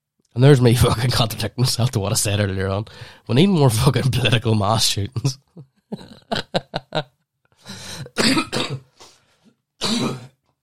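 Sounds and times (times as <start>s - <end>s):
speech: 0.4s - 7.1s
laughter: 5.5s - 7.1s
person coughing: 8.0s - 9.0s, 9.8s - 10.4s
person clearing their throat: 8.1s - 8.9s, 9.8s - 10.4s.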